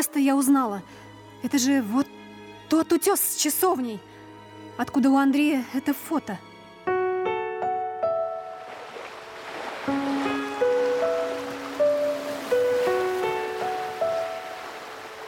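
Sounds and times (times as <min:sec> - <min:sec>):
speech: 0:00.0 - 0:04.1, 0:04.8 - 0:06.5
gentle sustained musical notes: 0:06.5 - 0:15.2
calm sea waves washing onto the shore: 0:08.6 - 0:15.2.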